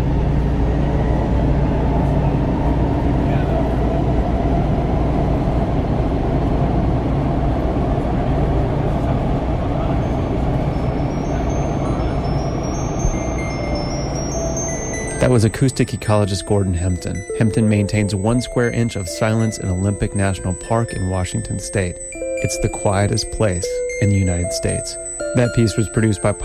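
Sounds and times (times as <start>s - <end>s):
train rumbling along rails: 0.0s - 15.1s
speech: 15.3s - 26.4s.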